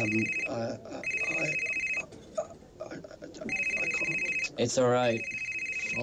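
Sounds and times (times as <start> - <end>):
speech: 0.0 - 1.7, 4.6 - 6.0
telephone ringing with trilling electronic tone: 0.0 - 2.1, 3.5 - 6.0
murmuring voices: 0.0 - 6.0.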